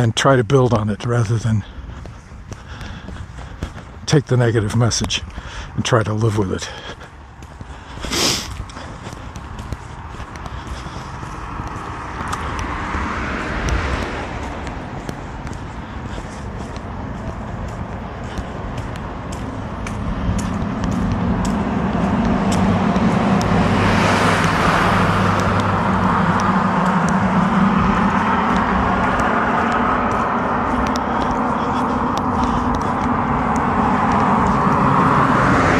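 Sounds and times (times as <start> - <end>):
speech: 0.0 - 1.7, 4.1 - 7.0
road traffic with engines and tire noise: 0.0 - 35.7
vehicle whooshing past: 11.0 - 15.4, 19.9 - 35.7.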